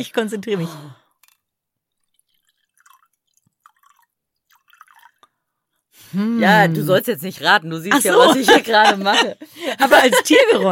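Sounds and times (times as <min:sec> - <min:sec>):
speech: 0:00.0 - 0:01.0, 0:06.1 - 0:10.7
wine pouring into a glass: 0:01.9 - 0:05.4
laughter: 0:07.9 - 0:10.7.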